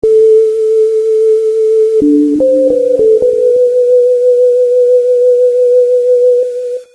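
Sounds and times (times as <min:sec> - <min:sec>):
sine wave tone: 0:00.0 - 0:06.9.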